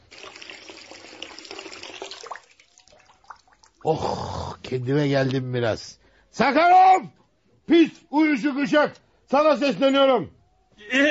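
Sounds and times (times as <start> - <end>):
tap water running as someone washes their face: 0.0 - 3.9
water dripping: 0.0 - 4.8
speech: 3.8 - 11.0.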